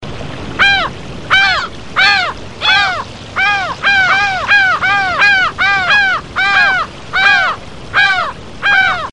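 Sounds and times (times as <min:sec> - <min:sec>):
pair of laughing gulls: 0:00.6 - 0:09.1.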